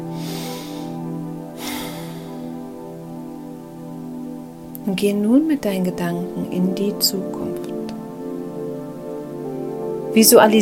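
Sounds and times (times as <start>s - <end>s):
slow deep human breath during a guided relaxation: 0.0s - 2.7s
low drone: 0.0s - 4.5s
speech: 4.9s - 8.0s, 10.1s - 10.6s.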